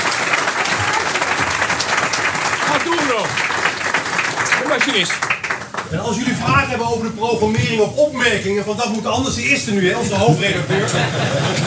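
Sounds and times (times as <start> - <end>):
audience applause at the start of an event: 0.0 - 6.5
speech: 3.1 - 3.5, 4.6 - 5.3, 5.9 - 11.6
laughter: 10.0 - 11.6.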